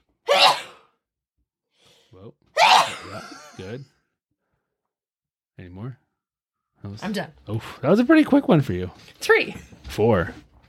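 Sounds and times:
person sneezing: 0:00.3 - 0:00.8, 0:02.6 - 0:03.4
speech: 0:02.1 - 0:04.0, 0:05.6 - 0:06.0, 0:06.8 - 0:10.4.

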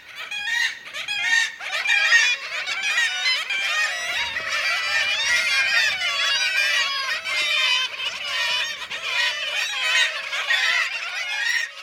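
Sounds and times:
black-legged kittiwake colony calling in Norway: 0:00.0 - 0:11.8.

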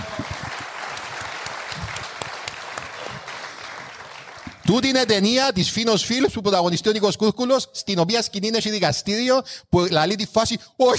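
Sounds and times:
crowd applauding: 0:00.0 - 0:05.2
speech: 0:04.7 - 0:10.9.

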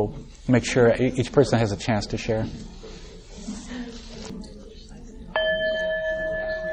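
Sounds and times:
speech: 0:00.0 - 0:02.8
low murmur of voices: 0:00.0 - 0:06.7
hand bell ringing: 0:05.4 - 0:06.7.

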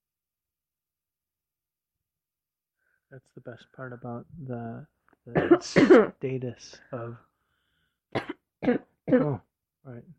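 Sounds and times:
speech: 0:03.1 - 0:07.3, 0:08.1 - 0:10.1
throaty coughs: 0:05.3 - 0:06.2, 0:08.1 - 0:09.5.

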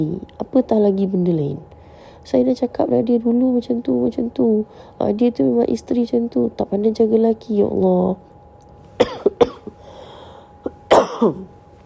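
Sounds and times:
speech: 0:00.0 - 0:08.3, 0:09.0 - 0:09.8, 0:11.2 - 0:11.6
person coughing: 0:09.0 - 0:09.9, 0:10.6 - 0:11.5.

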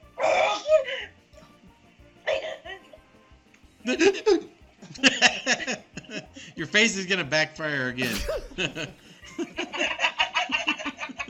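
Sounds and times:
speech: 0:03.8 - 0:05.7, 0:06.6 - 0:09.0
laughter: 0:03.9 - 0:06.4, 0:08.0 - 0:11.2
person sneezing: 0:08.0 - 0:08.9.

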